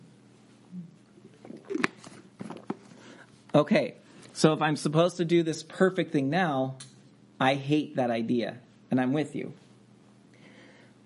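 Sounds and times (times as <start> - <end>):
person sipping water with slurps and swallows: 0.7 - 3.3
speech: 3.6 - 9.6.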